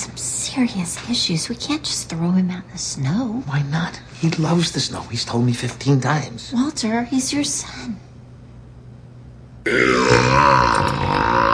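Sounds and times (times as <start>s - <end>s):
speech: 0.6s - 8.1s, 9.6s - 11.4s
loud burp: 9.6s - 11.5s.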